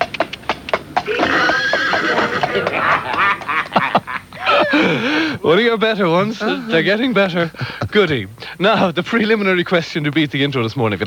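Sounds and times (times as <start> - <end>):
horse hoof clops: 0.0 - 4.7
horse neighing and whinnying: 1.0 - 5.1
laughter: 1.1 - 9.3
speech: 4.7 - 11.0.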